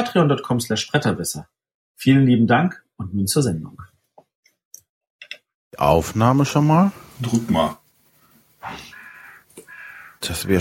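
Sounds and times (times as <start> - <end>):
speech: 0.0 - 4.0, 5.7 - 7.8, 8.6 - 8.9, 10.2 - 10.5
raven cawing outside the window: 8.6 - 10.3.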